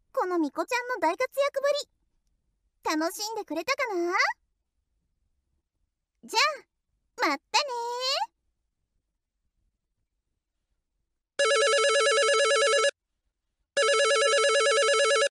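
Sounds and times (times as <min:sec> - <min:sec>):
speech: 0:00.4 - 0:02.0, 0:02.8 - 0:04.4, 0:06.2 - 0:08.3
telephone ringing in electronic warbling bursts: 0:11.4 - 0:13.0, 0:13.8 - 0:15.3.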